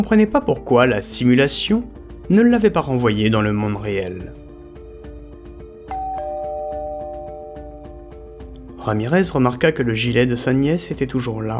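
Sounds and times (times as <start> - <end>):
speech: 0.0 - 4.4, 8.8 - 11.5
steady rhythmic music: 0.0 - 11.5
bright doorbell chime: 5.9 - 8.5.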